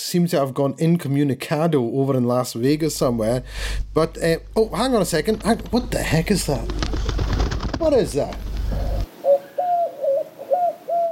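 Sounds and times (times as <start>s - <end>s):
speech: 0.1s - 7.2s, 7.8s - 8.5s
carrier pigeon cooing: 5.3s - 11.0s.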